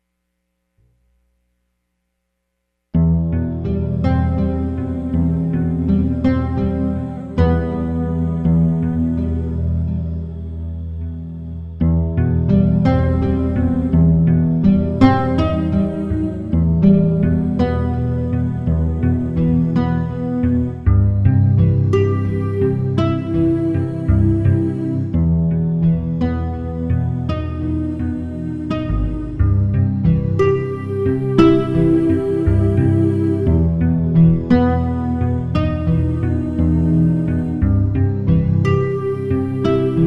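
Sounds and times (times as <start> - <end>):
eight-tone triadic cluster chord: 3.0 - 40.0.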